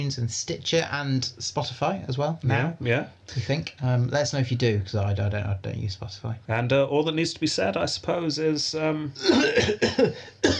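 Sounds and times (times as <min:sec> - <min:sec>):
speech: 0:00.0 - 0:10.5
harsh raspy coughs: 0:09.2 - 0:10.5.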